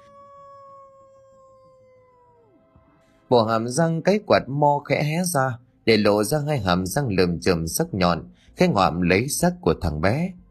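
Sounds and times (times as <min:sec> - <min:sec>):
lead dog of a pack howling mournfully: 0:00.0 - 0:03.1
speech: 0:03.3 - 0:10.4.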